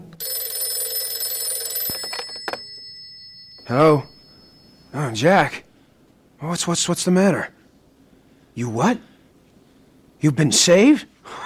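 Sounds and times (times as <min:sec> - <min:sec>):
buzzy telephone bell ringing: 0:00.2 - 0:05.2
speech: 0:03.7 - 0:04.1, 0:04.9 - 0:05.6, 0:06.4 - 0:07.6, 0:08.6 - 0:09.1, 0:10.2 - 0:11.4.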